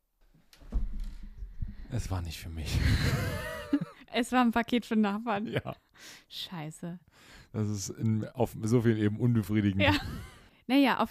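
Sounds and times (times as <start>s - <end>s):
door clicks and rattles as it is opened: 0.5s - 1.8s
low thumps of a moving door: 0.6s - 1.9s
speech: 1.9s - 3.6s, 4.2s - 11.0s
laughter: 2.7s - 3.9s.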